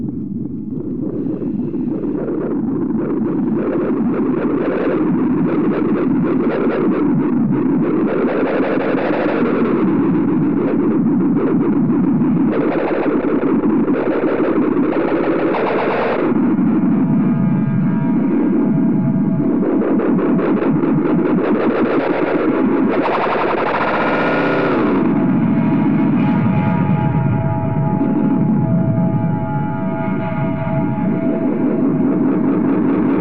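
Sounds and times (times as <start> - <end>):
steady low drone: 0.0 - 33.1
early electronic music with proto-synthesizers oscillators and noise machines: 17.1 - 33.1.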